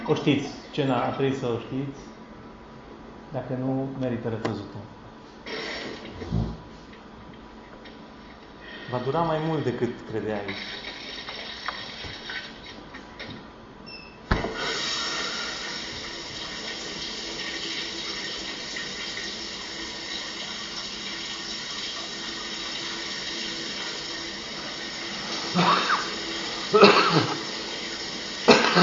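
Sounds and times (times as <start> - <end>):
speech: 0.1 - 2.2, 3.3 - 5.0, 8.9 - 10.9
shower water running: 10.4 - 12.8, 14.5 - 28.7.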